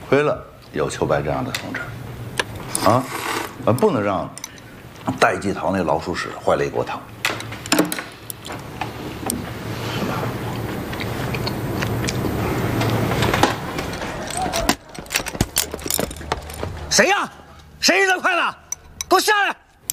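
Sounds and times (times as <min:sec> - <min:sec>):
dense noisy background: 0:00.0 - 0:19.9
chopsticks thrown and clattering down: 0:13.8 - 0:16.9, 0:18.6 - 0:19.9
loud agitated voices shouting: 0:13.9 - 0:15.6.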